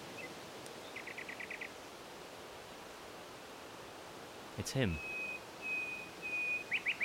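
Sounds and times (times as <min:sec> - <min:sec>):
nightingale singing: 0:00.1 - 0:01.7, 0:04.8 - 0:07.0
speech: 0:04.6 - 0:05.1.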